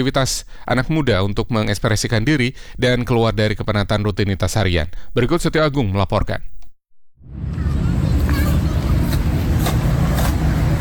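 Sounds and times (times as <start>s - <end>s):
speech: 0.0s - 6.5s
road traffic of cars and motorcycles: 7.2s - 10.8s.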